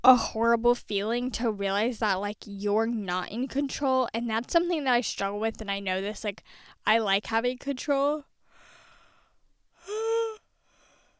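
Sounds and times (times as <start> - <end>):
speech: 0.0 - 8.3
quiet breathing: 6.4 - 6.8, 8.4 - 11.1
person yawning: 9.8 - 10.4.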